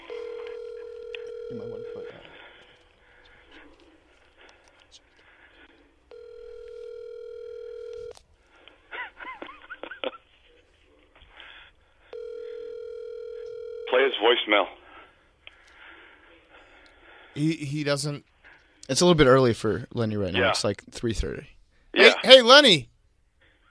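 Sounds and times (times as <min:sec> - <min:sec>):
ringback tones of an outgoing telephone call: 0:00.0 - 0:02.4, 0:06.1 - 0:08.1, 0:12.1 - 0:14.2
speech: 0:01.5 - 0:02.3, 0:14.1 - 0:14.8, 0:17.4 - 0:18.3, 0:18.9 - 0:21.6, 0:22.2 - 0:22.9.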